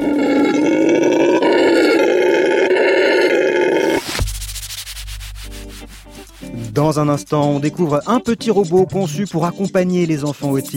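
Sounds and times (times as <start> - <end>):
howler monkey deep roaring howl: 0.0 - 4.0
speech: 6.8 - 10.7.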